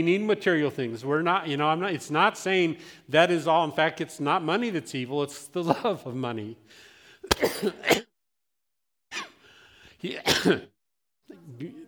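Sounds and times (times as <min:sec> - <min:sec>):
speech: 0:00.0 - 0:08.1, 0:10.0 - 0:10.7, 0:11.3 - 0:11.8
person coughing: 0:07.2 - 0:08.1, 0:09.1 - 0:09.4, 0:10.1 - 0:10.7
person clearing throat: 0:07.3 - 0:08.1, 0:10.2 - 0:10.7.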